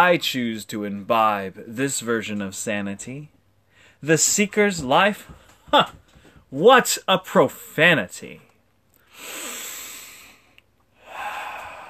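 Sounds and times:
speech: 0:00.0 - 0:03.4, 0:04.0 - 0:08.5
deep breaths: 0:03.6 - 0:04.0, 0:05.3 - 0:06.5, 0:09.0 - 0:11.8.

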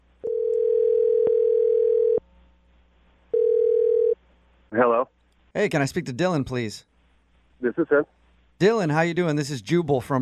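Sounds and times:
telephone dial tone: 0:00.3 - 0:02.2, 0:03.4 - 0:04.2
speech: 0:05.6 - 0:06.9, 0:07.6 - 0:10.1.

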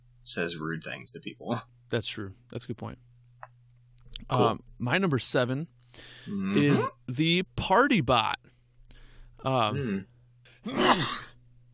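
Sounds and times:
speech: 0:00.2 - 0:03.1, 0:04.3 - 0:08.5, 0:09.4 - 0:11.2
person sneezing: 0:10.6 - 0:11.3.

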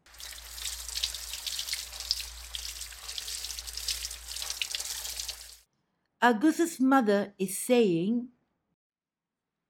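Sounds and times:
water running from a garden hose: 0:00.0 - 0:05.6
speech: 0:06.2 - 0:08.4.

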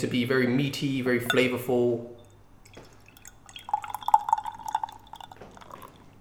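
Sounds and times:
speech: 0:00.0 - 0:02.2
stout beer dripping: 0:01.2 - 0:06.1
7.1% extra stout beer poured into a glass: 0:02.2 - 0:06.1.

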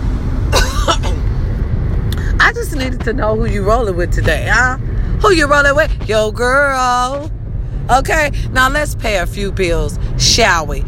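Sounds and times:
steady low rumble: 0:00.0 - 0:10.8
person coughing: 0:00.5 - 0:01.3
speech: 0:02.6 - 0:10.8.

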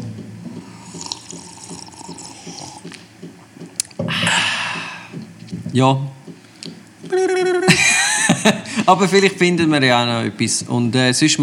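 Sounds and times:
tea pouring with a gurgling trickle: 0:00.6 - 0:03.0
speech: 0:05.8 - 0:06.2, 0:08.4 - 0:11.4
laughter: 0:07.1 - 0:09.0.

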